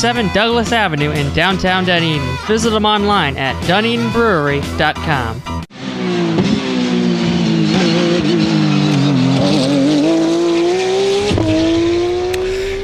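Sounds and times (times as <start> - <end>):
speech: 0.0 - 6.3
race cars roaring past at high speed: 5.7 - 12.8
race car tire squeals: 7.4 - 9.8.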